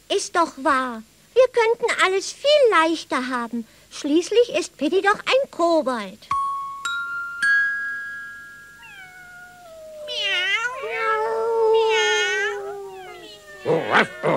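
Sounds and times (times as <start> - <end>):
speech: 0.2 - 6.3
crowd of cats meowing and yowling: 8.7 - 14.3.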